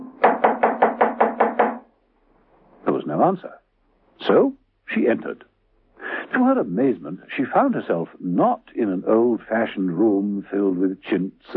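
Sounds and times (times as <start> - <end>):
knuckles knocking on a cottage front door: 0.2 - 1.8
speech: 3.1 - 3.6, 4.2 - 5.5, 6.3 - 11.5.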